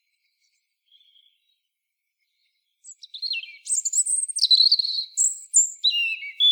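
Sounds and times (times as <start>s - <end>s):
European robin Erithacus rubecula singing: 2.8s - 6.5s.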